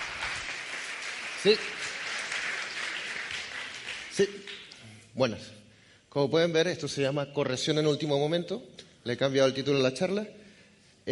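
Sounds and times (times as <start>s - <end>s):
audience applause for a speaker at a talk: 0.0s - 4.6s
speech: 1.4s - 1.9s, 4.2s - 4.6s, 5.2s - 10.4s.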